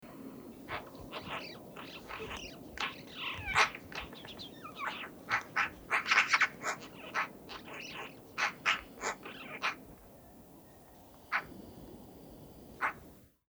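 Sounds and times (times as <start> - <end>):
Eurasian magpie Pica pica rasping chatter: 0.7 - 10.0.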